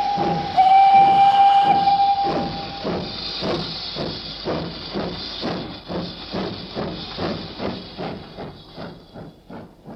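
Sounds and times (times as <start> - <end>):
steam locomotive whistle: 0.0 - 3.1
steam locomotive hissing steam: 0.0 - 9.9.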